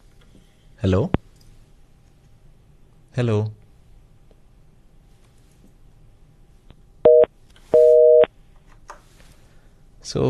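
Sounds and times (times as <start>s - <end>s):
speech: 0.8s - 1.2s, 3.2s - 3.6s, 10.1s - 10.2s
telephone busy signal on a call line that fails to connect: 7.1s - 8.3s.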